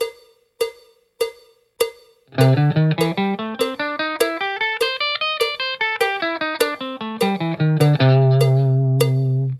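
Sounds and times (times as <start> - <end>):
blues guitar playing with triplet feel: 2.3 - 9.5.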